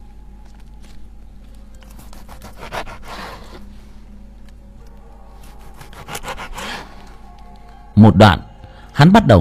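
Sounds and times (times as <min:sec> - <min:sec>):
meat being cut in a gloomy kitchen: 0:01.9 - 0:03.6, 0:05.6 - 0:06.9
speech: 0:08.0 - 0:08.4, 0:09.0 - 0:09.3.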